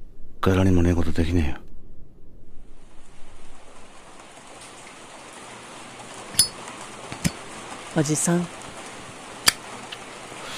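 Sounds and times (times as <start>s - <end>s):
speech: 0.4s - 1.6s, 8.0s - 8.6s
steady rain falling at night: 2.7s - 10.5s.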